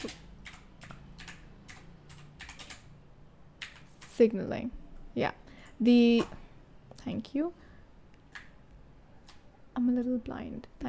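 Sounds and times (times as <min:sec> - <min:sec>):
rapid keystrokes on a computer keyboard: 0:00.0 - 0:02.9, 0:03.6 - 0:04.2
low hum: 0:00.0 - 0:10.8
speech: 0:04.2 - 0:06.4, 0:07.0 - 0:07.6, 0:09.8 - 0:10.8.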